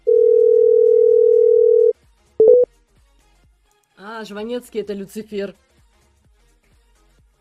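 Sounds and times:
telephone dial tone: 0.0s - 2.6s
speech: 4.2s - 5.7s.

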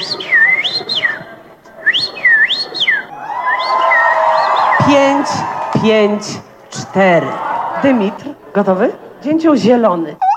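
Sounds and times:
finger whistling imitating a common rosefinch song: 0.0s - 4.8s
speech: 4.9s - 10.2s
laughter: 6.7s - 9.6s.

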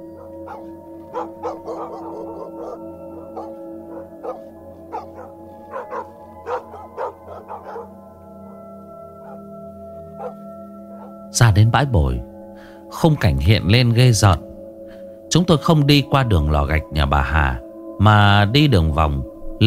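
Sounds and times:
village dogs barking loudly at night: 0.0s - 8.0s, 9.2s - 9.5s, 10.2s - 11.2s
speech: 0.6s - 1.7s, 11.4s - 12.3s, 12.9s - 14.5s, 15.3s - 19.3s.

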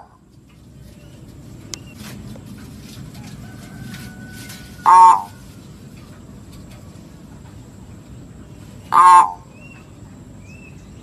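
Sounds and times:
lovebird lure call screech: 4.6s - 5.4s.

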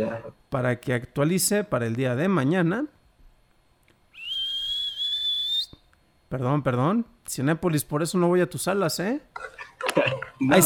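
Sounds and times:
speech: 0.0s - 3.0s, 6.3s - 10.6s
person whistling a high-pitched whistle: 4.1s - 5.8s.

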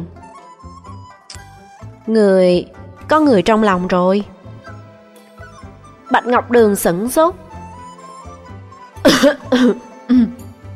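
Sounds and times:
speech: 2.1s - 4.3s, 6.1s - 7.4s, 9.0s - 10.4s
dry coughing after choking on tea: 9.0s - 10.5s.

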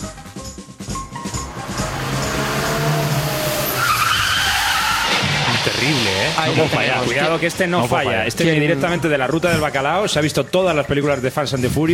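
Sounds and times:
motor vehicle engine roaring: 1.0s - 8.4s
motor vehicle tires squealing in a skid: 1.1s - 9.2s
speech: 5.8s - 11.9s.

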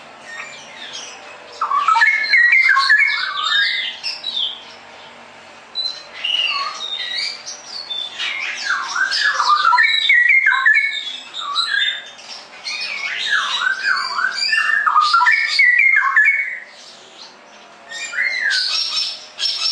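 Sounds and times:
caged straw-headed bulbul singing fluid whistled phrases: 1.6s - 4.6s, 5.8s - 12.1s, 12.7s - 16.7s, 17.9s - 19.7s.

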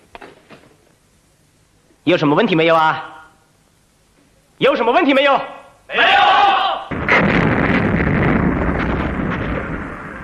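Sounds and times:
speech: 2.1s - 3.1s, 4.6s - 6.4s
artillery barrage of massed guns shelling enemy positions in a wartime attack: 6.9s - 10.2s.

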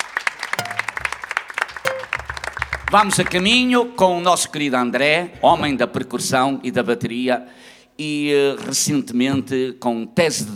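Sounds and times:
audience applause at a live music event: 0.0s - 3.4s
speech: 2.9s - 10.5s.

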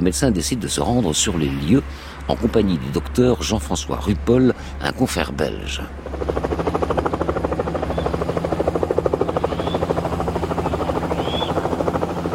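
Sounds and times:
speech: 0.0s - 6.9s
helicopter rotor blades thudding in flight near the Central African border: 5.5s - 12.3s.

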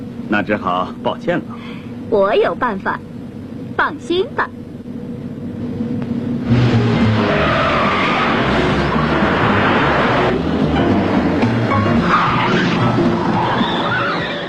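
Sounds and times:
car engines roaring during a car chase: 0.0s - 14.4s
speech: 0.3s - 3.1s, 3.8s - 4.6s
tires skidding and screeching during a car chase: 5.7s - 14.4s.

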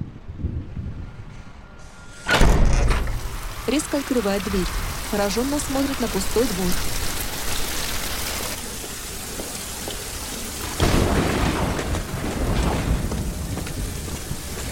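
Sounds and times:
heavy rain pouring on a yard: 2.8s - 14.6s
speech: 3.7s - 7.1s.

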